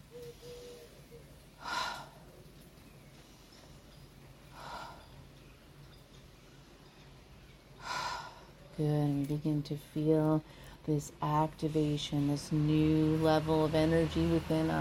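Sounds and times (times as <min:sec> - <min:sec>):
deep breaths in and out during a guided relaxation exercise: 0:01.6 - 0:02.4, 0:03.3 - 0:05.4, 0:07.8 - 0:08.7
speech: 0:08.8 - 0:14.7.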